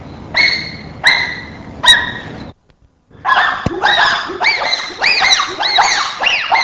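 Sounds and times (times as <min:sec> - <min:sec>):
staccato hooting calls: 0:03.1 - 0:06.6.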